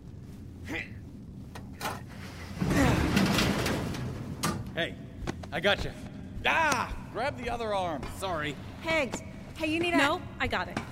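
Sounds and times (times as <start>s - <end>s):
elevator door on an elevator shaft forced open: 1.8s - 4.7s
speech: 4.8s - 10.9s.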